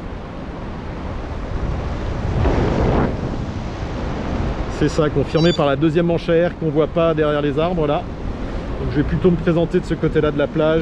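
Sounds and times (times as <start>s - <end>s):
wind blowing on a beach: 0.0s - 6.1s
speech: 4.8s - 8.2s, 8.8s - 10.8s.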